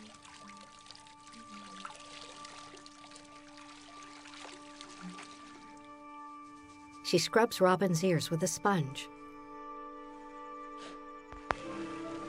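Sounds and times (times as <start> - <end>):
water poured from a jug over a woman's hair in an outdoor bathtub: 0.0 - 6.8, 11.4 - 12.2
speech: 7.1 - 9.2.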